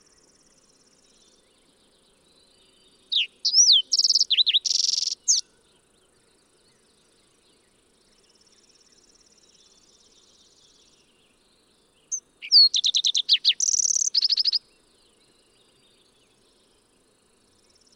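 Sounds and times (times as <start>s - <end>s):
fox sparrow song: 0.0s - 17.9s.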